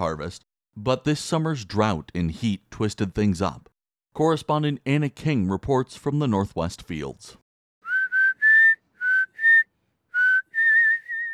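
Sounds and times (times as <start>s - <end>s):
speech: 0.0s - 7.4s
potato farm supervisor whistling a short lilting tune while working: 7.8s - 11.3s.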